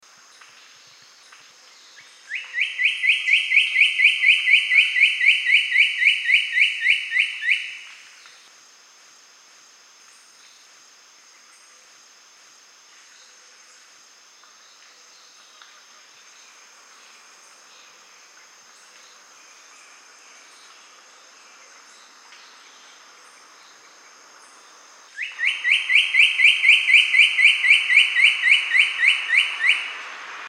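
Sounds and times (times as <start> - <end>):
Cocoa Woodcreeper calling: 0.8 - 8.5, 24.5 - 30.4.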